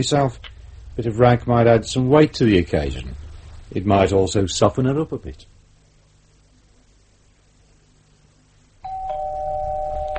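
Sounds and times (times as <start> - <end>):
speech: 0.0 - 5.5
faint low hum: 0.0 - 10.1
two-note doorbell ding-dong: 8.8 - 10.1.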